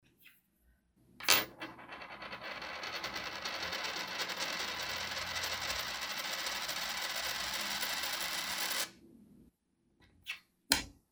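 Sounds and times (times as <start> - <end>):
medium coin spinning for a long time: 1.2 - 8.9.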